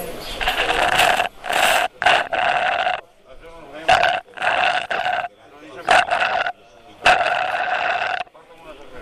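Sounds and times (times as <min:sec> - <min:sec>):
straw gurgling: 0:00.4 - 0:03.0, 0:03.9 - 0:05.3, 0:05.8 - 0:08.3.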